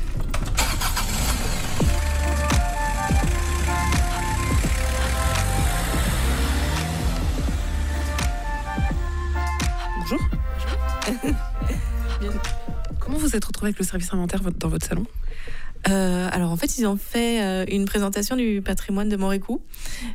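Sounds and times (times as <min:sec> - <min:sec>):
car engine rumble while driving: 0:00.0 - 0:13.2
speech: 0:13.4 - 0:15.2, 0:15.9 - 0:20.1.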